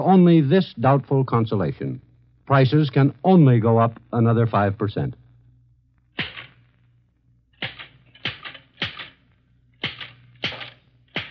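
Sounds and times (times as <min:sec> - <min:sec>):
speech: 0:00.0 - 0:05.2
faint low hum: 0:00.0 - 0:11.2
typewriter keystrokes typed with a pencil held between the teeth: 0:07.6 - 0:09.2, 0:09.8 - 0:11.2.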